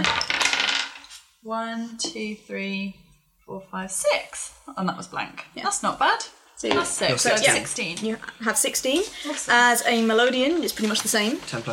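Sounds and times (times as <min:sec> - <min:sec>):
custom three-sided dice clattering across a hard surface: 0:00.0 - 0:01.2
speech: 0:01.5 - 0:11.7.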